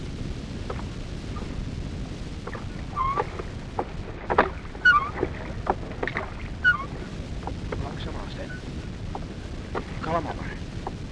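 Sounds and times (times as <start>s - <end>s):
low water rumble: 0.0s - 11.1s
oarlocks knocking and squeaking: 0.7s - 1.5s, 2.5s - 10.2s
oars creaking and splashing as a small boat is rowed: 0.7s - 1.6s, 2.4s - 11.1s.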